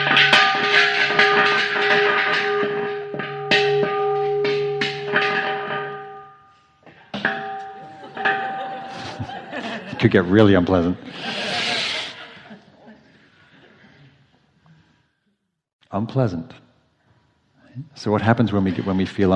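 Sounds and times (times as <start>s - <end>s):
clatter: 0.0s - 10.7s
meditation bell ringing: 0.1s - 6.6s, 7.3s - 9.4s
laughter: 7.8s - 14.5s
speech: 10.0s - 11.3s, 16.0s - 16.6s, 17.8s - 19.3s.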